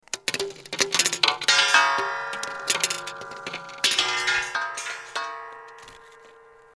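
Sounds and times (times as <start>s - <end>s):
metal clinking: 0.0s - 6.7s.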